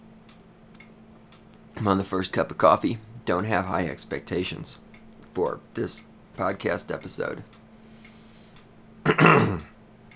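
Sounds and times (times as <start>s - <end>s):
speech: 1.8s - 7.6s
throat clearing: 9.0s - 9.8s.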